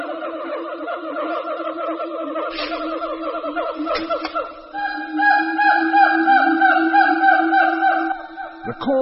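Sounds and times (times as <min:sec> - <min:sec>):
siamang family territorial duet hoots: 0:00.0 - 0:08.6.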